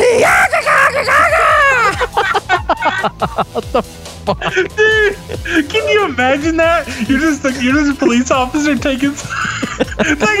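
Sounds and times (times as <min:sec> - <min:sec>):
human dying scream from a film: 0:00.0 - 0:03.2, 0:04.4 - 0:06.1
laughter: 0:00.0 - 0:08.2, 0:09.0 - 0:10.3
speech: 0:03.1 - 0:10.3.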